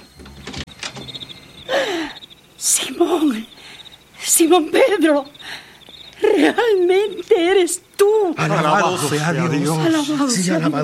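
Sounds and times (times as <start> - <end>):
door creaking open with a drawn-out squeal: 0.0 - 1.7
door latch clunks and rattles: 0.2 - 1.4
speech: 4.5 - 5.4, 6.3 - 10.8.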